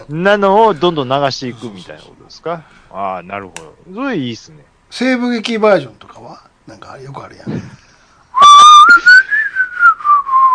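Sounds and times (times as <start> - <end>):
speech: 0.0 - 7.8
person whistling a tune: 8.3 - 10.5.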